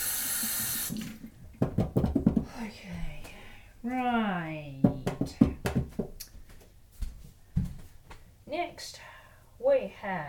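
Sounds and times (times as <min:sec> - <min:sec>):
kitchen tap water running as hands are washed during cooking: 0:00.0 - 0:01.8
quiet thuds: 0:01.5 - 0:03.4, 0:04.8 - 0:08.2
speech: 0:03.8 - 0:04.8, 0:09.7 - 0:10.2.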